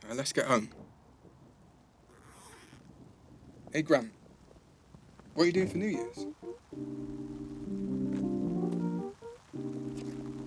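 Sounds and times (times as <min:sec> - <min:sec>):
speech: 0:00.1 - 0:00.8, 0:03.7 - 0:04.2, 0:05.4 - 0:07.5
soft steady rain falling: 0:03.6 - 0:10.4
person calling out: 0:05.6 - 0:06.3.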